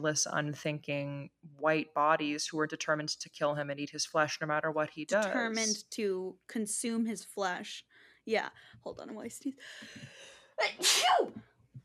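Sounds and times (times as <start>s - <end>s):
speech: 0.0s - 11.5s
faint low thumps: 5.0s - 5.8s
single loud sneeze: 10.7s - 11.4s.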